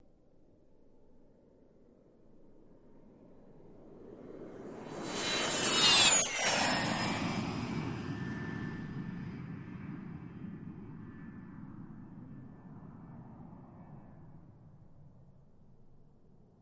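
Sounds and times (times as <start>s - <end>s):
Lear Jet passing overhead fast: 3.4s - 15.0s.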